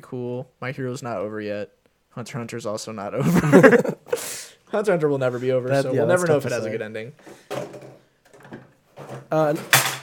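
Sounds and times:
speech: 0.1s - 7.7s, 9.3s - 9.9s
laughter: 3.2s - 4.2s
objects clattering and tumbling over on a desk: 7.3s - 10.0s.

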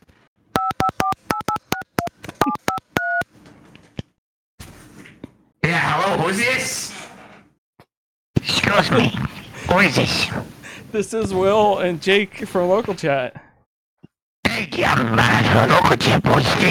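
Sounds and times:
telephone keypad dialing beeps: 0.6s - 3.3s
speech: 6.3s - 6.9s, 8.8s - 13.5s, 14.8s - 16.6s.

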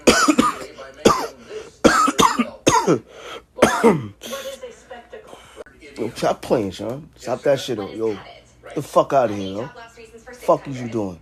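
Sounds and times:
person coughing: 0.0s - 4.5s
speech: 2.9s - 4.4s, 6.0s - 9.9s, 10.5s - 11.2s.

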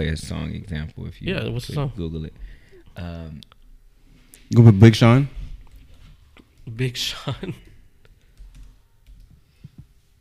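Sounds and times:
speech: 0.0s - 3.6s, 4.5s - 5.4s, 6.6s - 7.7s
typing on a computer keyboard: 7.6s - 9.4s.

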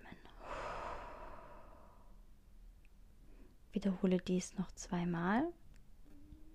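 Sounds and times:
deep breath during a guided breathing exercise: 0.4s - 2.2s
speech: 3.8s - 5.6s.

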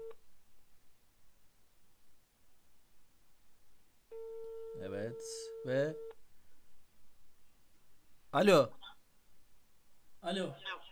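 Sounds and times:
telephone ringback tone from an outgoing call: 4.1s - 6.1s
speech: 4.8s - 6.0s, 8.4s - 8.8s, 10.2s - 10.8s.

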